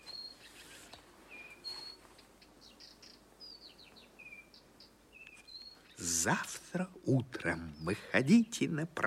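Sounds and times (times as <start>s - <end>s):
several birds chirping and whistling in a dawn chorus: 0.0s - 6.0s
faint hiss: 0.0s - 9.0s
speech: 6.2s - 9.0s.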